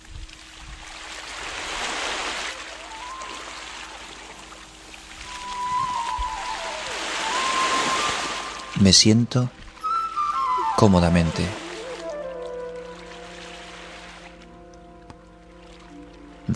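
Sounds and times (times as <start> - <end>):
sea waves: 0.0 - 16.5
faint high whistling calls: 2.6 - 4.6, 5.2 - 9.0, 9.8 - 13.5
speech: 8.8 - 9.6, 10.8 - 11.6.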